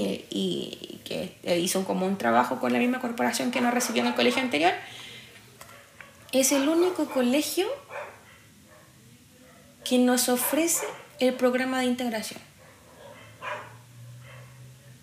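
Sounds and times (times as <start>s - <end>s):
speech: 0.3s - 5.0s, 6.3s - 7.9s, 9.9s - 12.5s
dog barking: 5.6s - 11.2s, 12.6s - 15.0s.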